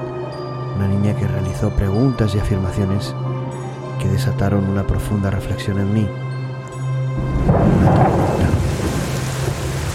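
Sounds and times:
speech: 0:01.1 - 0:03.3, 0:04.0 - 0:06.2
rain pattering: 0:07.2 - 0:09.9
thunder rumbling: 0:07.2 - 0:09.9.

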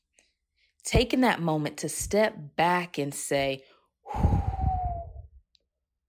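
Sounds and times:
speech: 0:00.9 - 0:04.2
deep breath released in a long breathy sigh: 0:04.1 - 0:05.2.

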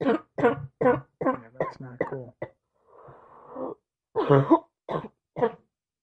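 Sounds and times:
harsh coughs: 0:00.0 - 0:02.6, 0:04.2 - 0:05.6
raspy throat clearing: 0:00.0 - 0:02.6, 0:04.2 - 0:05.6
speech: 0:04.3 - 0:04.6.

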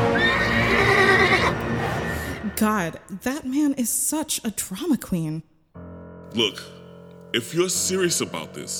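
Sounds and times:
white horse whinnying while being ridden off: 0:00.1 - 0:01.6
speech: 0:02.6 - 0:05.5, 0:06.3 - 0:06.7, 0:07.3 - 0:08.7.

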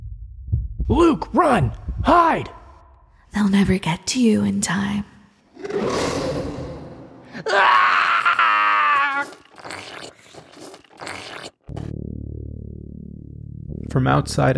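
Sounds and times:
speech: 0:00.9 - 0:02.6, 0:03.4 - 0:05.1, 0:07.4 - 0:07.8, 0:14.0 - 0:14.5
person screaming: 0:05.7 - 0:09.8.

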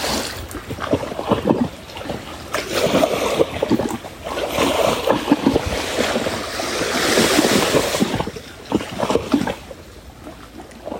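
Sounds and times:
wind rumbling across the microphone: 0:00.0 - 0:10.9
ocean waves washing in: 0:01.5 - 0:10.0.

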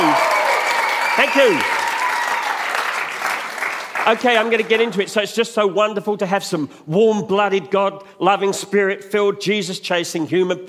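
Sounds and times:
crowd of people clapping and applauding: 0:00.0 - 0:05.1
speech: 0:01.2 - 0:01.8, 0:04.0 - 0:10.6.

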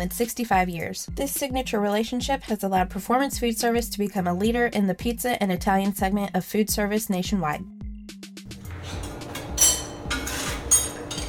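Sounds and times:
speech: 0:00.0 - 0:07.8
scraping as pizza food is prepared: 0:08.5 - 0:11.2
metal utensils clinking while making pizza: 0:08.6 - 0:11.2.

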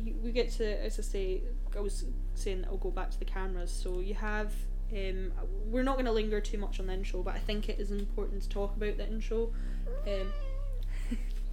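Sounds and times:
steady low hum: 0:00.0 - 0:11.5
speech: 0:00.2 - 0:10.5, 0:11.1 - 0:11.3
cat meowing: 0:09.9 - 0:10.8.

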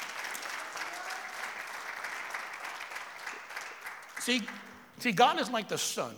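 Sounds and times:
congregation applauding: 0:00.0 - 0:04.9
speech: 0:04.2 - 0:06.1.

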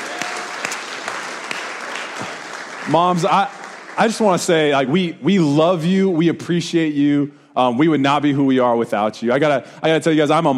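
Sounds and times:
audience applause for the mothers at a high school ministry morning gathering: 0:00.0 - 0:04.7
speech: 0:02.8 - 0:10.5.

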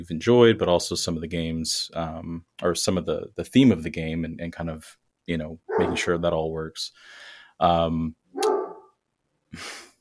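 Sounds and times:
speech: 0:00.0 - 0:08.5, 0:09.5 - 0:09.8
dog barking: 0:05.7 - 0:06.2, 0:08.4 - 0:09.0.

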